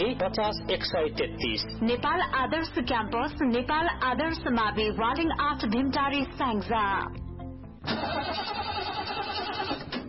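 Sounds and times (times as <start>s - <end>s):
speech: 0.0s - 7.2s, 7.8s - 8.8s
car engine with a failing battery cranking and running: 7.8s - 10.0s.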